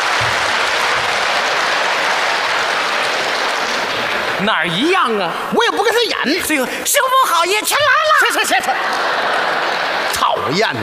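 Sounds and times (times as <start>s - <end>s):
audience applause: 0.0s - 6.0s, 7.3s - 10.8s
speech: 4.4s - 10.8s
laughter: 7.4s - 10.8s.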